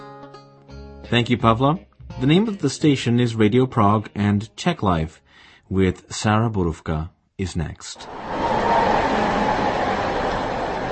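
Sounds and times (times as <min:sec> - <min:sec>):
speech: 0:01.1 - 0:08.3
dense street traffic with trams and cars: 0:08.0 - 0:10.9
rumbling rail-like drone of a tram: 0:08.0 - 0:10.9.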